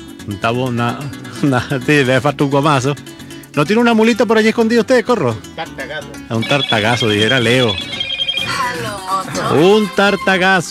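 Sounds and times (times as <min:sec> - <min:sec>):
speech: 0:00.2 - 0:07.9, 0:09.0 - 0:10.6
telephone melodic electronic ringtone for an incoming call: 0:06.4 - 0:09.2.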